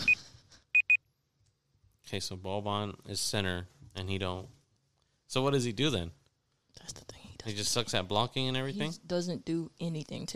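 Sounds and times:
timer beeping with short high electronic tones: 0.8 - 1.0
speech: 2.1 - 4.6, 5.3 - 6.2, 6.8 - 10.3.

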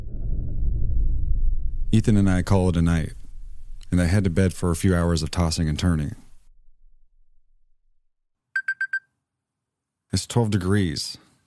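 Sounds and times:
faint low rumble: 0.0 - 8.1
speech: 1.9 - 3.2, 3.9 - 6.2, 10.1 - 11.3
electronic alarm clock beeping: 8.6 - 9.0.

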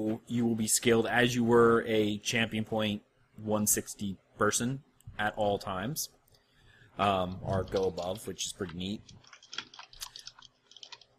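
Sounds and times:
speech: 0.0 - 6.2, 7.0 - 9.3
typing on a mechanical keyboard with brown switches: 8.6 - 11.1.

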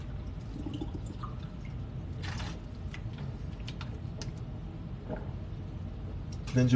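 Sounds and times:
spring water sloshing and splashing: 0.0 - 4.3
low rumble: 0.0 - 6.7
speech: 6.6 - 6.7.

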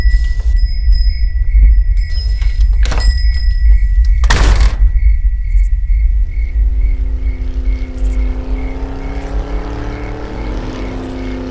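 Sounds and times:
faint regular insect-like chirp: 0.0 - 11.5
van engine rumbling and approaching: 6.0 - 11.5.

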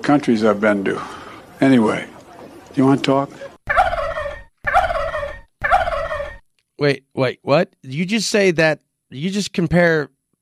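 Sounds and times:
speech: 0.0 - 2.1, 2.8 - 3.5, 6.8 - 10.2
turkeys gobbling: 0.7 - 6.5.

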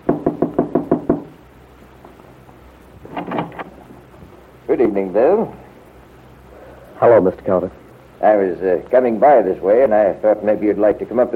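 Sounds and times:
firm knocking on the wooden front door of a bungalow: 0.0 - 1.4
low steady hiss: 0.0 - 11.3
speech: 4.8 - 5.6, 7.0 - 11.3.

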